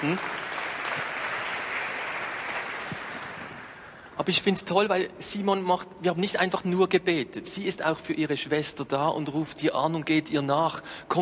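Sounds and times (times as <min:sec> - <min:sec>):
speech: 0:00.0 - 0:00.4, 0:04.2 - 0:11.2
room full of people applauding: 0:00.0 - 0:04.0.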